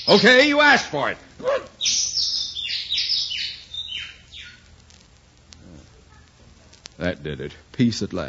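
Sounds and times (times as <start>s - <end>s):
speech: 0.0s - 1.7s, 7.0s - 8.2s
bird chirping at a window: 1.4s - 4.8s.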